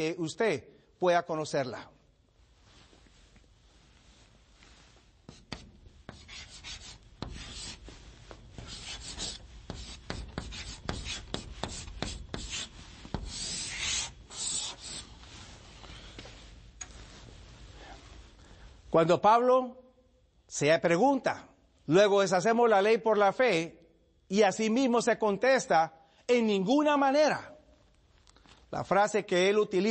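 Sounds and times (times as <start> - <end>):
speech: 0.0 - 2.0, 18.9 - 19.8, 20.6 - 27.5, 28.7 - 29.8
chalk writing on a blackboard: 4.8 - 15.6.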